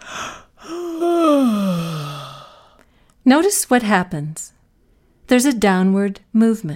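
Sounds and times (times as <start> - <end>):
person yawning: 0.0 - 2.7
speech: 3.3 - 4.6, 5.3 - 6.7.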